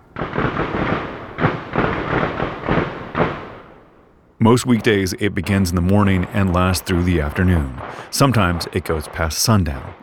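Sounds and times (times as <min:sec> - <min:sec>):
continuous rumbling echo of gunshots: 0:00.0 - 0:10.0
rapid string of heavy booming gunshots: 0:00.2 - 0:03.6, 0:06.0 - 0:10.0
speech: 0:04.4 - 0:10.0.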